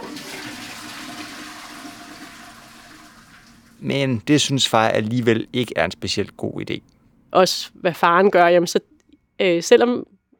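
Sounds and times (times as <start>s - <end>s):
toilet flushing: 0.0s - 5.9s
speech: 3.8s - 10.2s.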